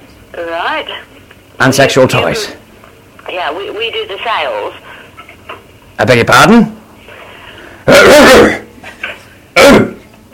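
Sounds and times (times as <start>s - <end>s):
speech: 0.3s - 2.6s, 3.2s - 4.9s, 6.0s - 6.8s, 7.9s - 8.6s
loud harsh rasping coughs: 7.9s - 10.1s.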